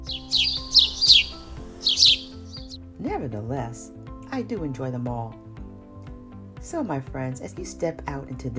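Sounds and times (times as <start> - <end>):
birds chirping and singing: 0.0 - 2.8
speech: 3.2 - 5.4, 6.7 - 8.5.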